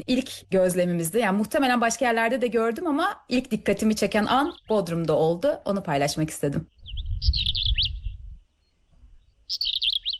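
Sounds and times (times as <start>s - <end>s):
speech: 0.0s - 7.5s
songbird singing squeaky twittering phrase of quick high notes: 0.0s - 10.1s.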